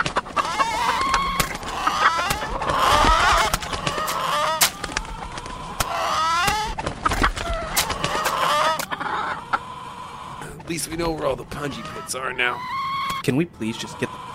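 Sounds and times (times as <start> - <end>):
chickens flapping: 0.0 - 8.9
flock of chickens clucking and squawking escaping a coop: 0.0 - 14.3
speech: 10.8 - 14.3.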